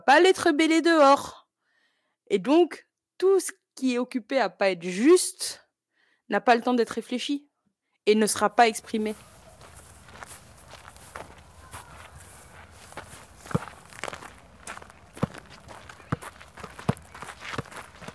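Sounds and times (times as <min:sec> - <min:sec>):
speech: 0:00.0 - 0:01.4, 0:02.3 - 0:05.6, 0:06.3 - 0:09.3
crunchy footsteps of people walking: 0:08.8 - 0:18.1.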